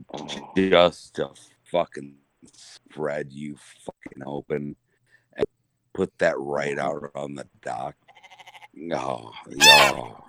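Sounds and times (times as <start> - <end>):
speech: 0.2 - 4.8, 5.4 - 8.0, 8.8 - 10.2
goat bleating: 8.1 - 8.8, 9.4 - 10.2.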